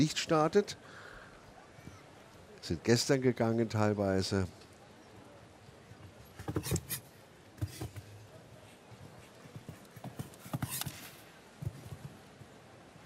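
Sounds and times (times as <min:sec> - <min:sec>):
speech: 0:00.0 - 0:01.0, 0:02.6 - 0:04.6, 0:06.6 - 0:06.9
soft hiss: 0:00.0 - 0:13.0
horse hooves clip-clopping: 0:05.9 - 0:12.7.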